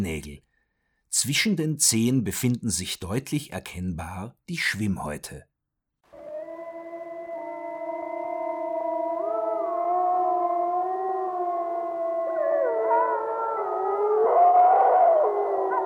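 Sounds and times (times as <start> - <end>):
speech: 0.0 - 0.5, 1.1 - 5.5
wolves howling in chorus: 6.1 - 15.8.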